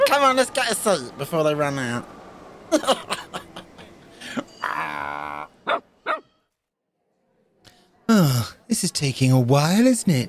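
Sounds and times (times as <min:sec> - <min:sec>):
speech: 0:00.1 - 0:03.4, 0:08.1 - 0:10.2
laughter: 0:02.7 - 0:05.4
dog barking: 0:05.7 - 0:06.2.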